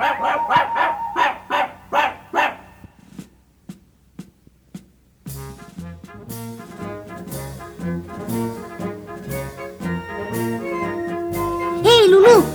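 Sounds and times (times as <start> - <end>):
small dog barking off-key in a children's musical story: 0.0 - 2.7, 11.7 - 12.5
band music: 5.3 - 12.5.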